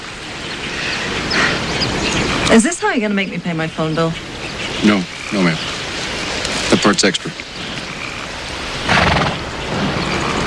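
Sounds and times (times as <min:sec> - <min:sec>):
steady hiss: 0:00.0 - 0:10.4
speech: 0:02.5 - 0:05.8, 0:06.8 - 0:07.5
horse whinnying: 0:08.9 - 0:09.4.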